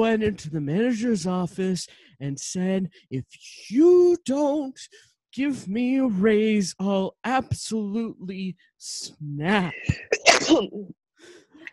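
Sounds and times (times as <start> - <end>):
speech: 0.0 - 11.4
person sneezing: 9.8 - 10.8.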